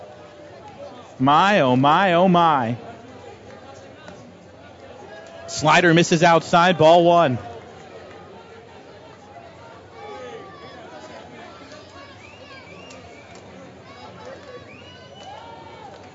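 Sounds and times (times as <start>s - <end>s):
scattered louder shouts from stadium crowd: 0.0s - 2.8s, 5.0s - 7.7s, 9.9s - 13.1s, 13.8s - 16.1s
speech: 1.2s - 2.8s, 5.6s - 7.5s
large stadium crowd buzzing and murmuring: 1.2s - 3.2s, 5.5s - 7.5s.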